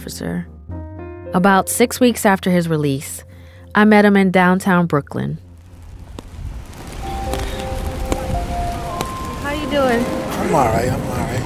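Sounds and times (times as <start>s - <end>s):
speech: 0.1s - 5.4s, 9.7s - 11.4s
steady outdoor rain hissing in Brooklyn New York City: 5.4s - 11.4s
sharp raindrops tapping: 7.1s - 9.4s.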